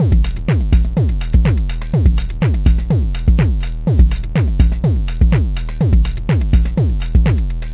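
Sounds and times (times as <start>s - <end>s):
mega kick drum in quiet house music: 0.0s - 7.7s.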